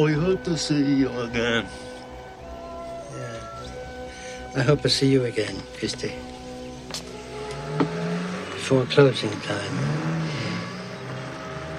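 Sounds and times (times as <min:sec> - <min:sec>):
speech: 0:00.0 - 0:01.9, 0:04.5 - 0:06.3, 0:08.7 - 0:10.1
car engine droning as the car drives up: 0:00.0 - 0:11.7.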